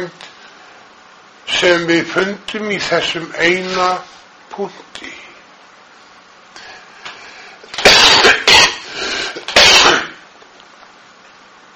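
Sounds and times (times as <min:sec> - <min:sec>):
speech: 0:00.0 - 0:00.2, 0:01.6 - 0:05.2
person coughing: 0:07.8 - 0:10.2.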